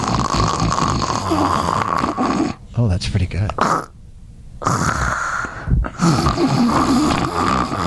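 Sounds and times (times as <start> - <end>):
man imitating his own snoring during sleep apnea: 0.0 - 2.6, 3.6 - 3.9, 4.6 - 7.8
speech: 2.8 - 3.9.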